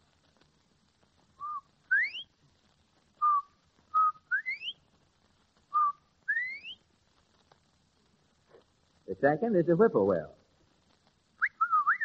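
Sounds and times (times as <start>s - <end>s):
person whistling an imitation of a bobwhite quail call: 1.4s - 2.3s, 3.2s - 4.8s, 5.8s - 6.8s, 11.4s - 12.0s
speech: 9.2s - 10.4s.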